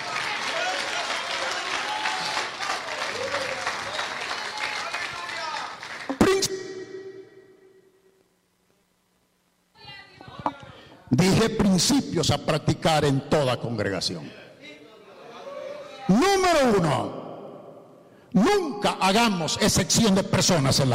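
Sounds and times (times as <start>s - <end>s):
congregation applauding: 0.0s - 6.4s
speech: 11.2s - 14.4s, 16.5s - 17.2s, 18.4s - 20.9s.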